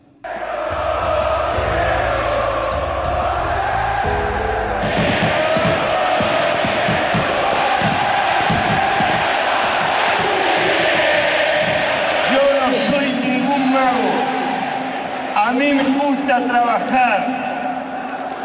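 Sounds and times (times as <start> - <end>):
huge stadium crowd roaring: 0.2 - 18.4
drum-like thumps: 4.8 - 12.2.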